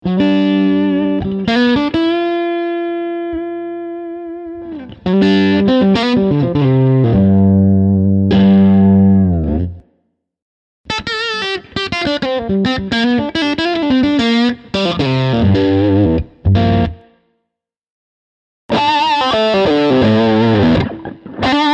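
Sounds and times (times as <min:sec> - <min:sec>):
overdriven lead guitar through a tube amp: 0:00.0 - 0:09.8, 0:10.9 - 0:17.2, 0:18.7 - 0:21.7.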